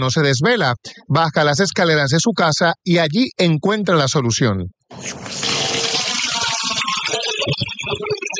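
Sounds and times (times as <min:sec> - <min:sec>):
speech: 0:00.0 - 0:05.5
fresh water running and pouring: 0:04.9 - 0:08.2.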